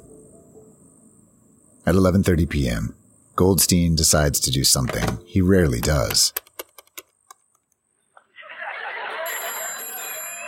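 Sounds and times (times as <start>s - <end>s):
speech: 1.8s - 6.4s
sharp clicks: 5.8s - 7.8s
laughter: 8.2s - 10.4s
telephone ringing with high electronic tones: 8.8s - 10.4s.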